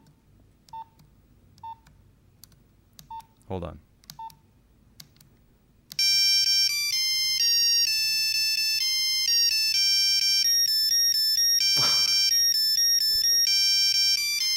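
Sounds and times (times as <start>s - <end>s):
speech: 3.5s - 3.9s
Nokia 3210 monophonic ringtone melody in beeping notes: 6.0s - 14.5s
laughter: 11.8s - 12.2s.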